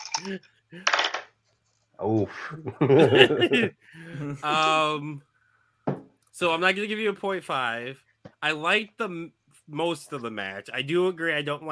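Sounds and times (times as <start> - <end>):
dice rattling across a hard surface: 0.0 - 1.3
speech: 0.2 - 1.1, 2.0 - 5.3, 6.4 - 11.7
laughter: 2.3 - 5.0.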